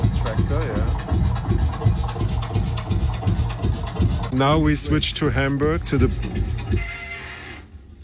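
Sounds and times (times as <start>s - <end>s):
Lanz Bulldog single-cylinder tractor engine chugging: 0.0s - 8.0s
heavy mechanical rumble: 0.0s - 8.0s
speech: 4.4s - 6.3s
bridge in Hamburg squealing: 5.6s - 8.0s.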